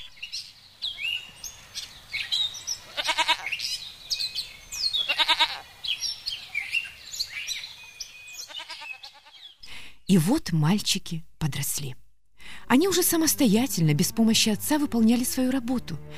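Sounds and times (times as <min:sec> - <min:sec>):
birds chirping and twittering outdoors: 0:00.0 - 0:09.9
goats bleating in short wavering calls: 0:02.9 - 0:03.6, 0:05.0 - 0:05.7, 0:08.4 - 0:09.4
speech: 0:10.1 - 0:12.0, 0:12.7 - 0:16.1.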